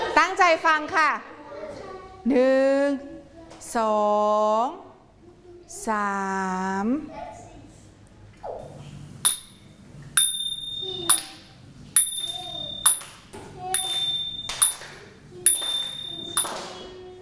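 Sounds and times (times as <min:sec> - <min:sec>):
speech: 0:00.2 - 0:01.3, 0:02.2 - 0:03.1, 0:03.7 - 0:04.9, 0:05.7 - 0:07.3
ching small Thai hand cymbals struck: 0:09.3 - 0:16.8.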